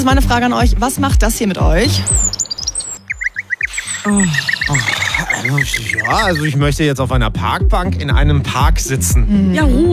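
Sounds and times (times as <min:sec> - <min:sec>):
speech: 0:00.0 - 0:02.4, 0:04.0 - 0:09.9
birds chirping and singing: 0:01.0 - 0:06.6
deeper throaty bird calls: 0:01.9 - 0:06.6.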